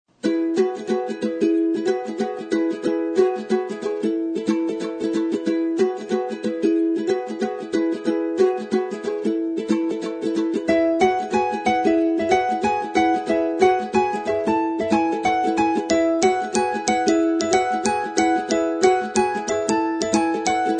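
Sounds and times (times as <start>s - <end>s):
ukulele: 0.1s - 20.7s
piano: 9.8s - 20.7s.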